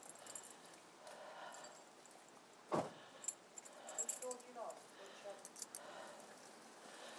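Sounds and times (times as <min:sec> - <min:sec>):
light clinks of keys: 0:00.0 - 0:02.4, 0:03.0 - 0:06.6
keys jangling and rattling: 0:03.2 - 0:04.8, 0:05.4 - 0:05.9.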